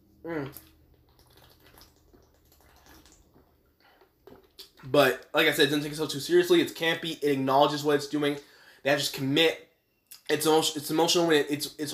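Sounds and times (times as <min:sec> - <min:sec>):
speech: 0:00.2 - 0:00.8, 0:04.8 - 0:09.6, 0:10.3 - 0:11.9
mouth and handling noises: 0:00.3 - 0:05.3
sipping water: 0:00.3 - 0:05.3.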